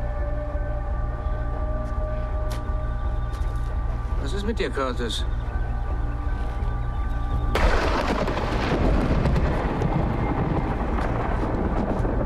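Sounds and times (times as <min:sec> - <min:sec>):
low hum: 0:00.0 - 0:12.2
speech: 0:04.3 - 0:05.4
thunder crack and rumble: 0:07.5 - 0:12.2.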